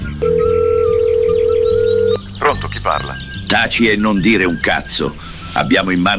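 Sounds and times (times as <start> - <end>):
short telephone dialing tones: 0.2 - 2.2
speech: 2.9 - 6.1.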